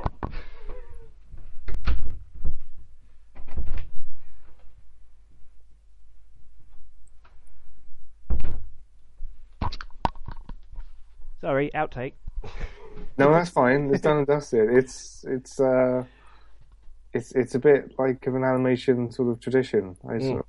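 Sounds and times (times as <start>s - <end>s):
room door opening and closing to let a cat out: 0.0s - 4.1s
speech: 11.4s - 16.2s, 17.2s - 20.4s.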